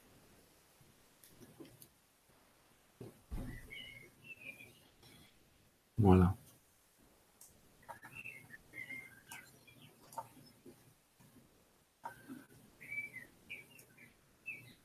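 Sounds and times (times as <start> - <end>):
birds chirping outdoors: 3.3 - 5.2, 7.8 - 10.8, 12.0 - 14.8
speech: 6.0 - 6.4.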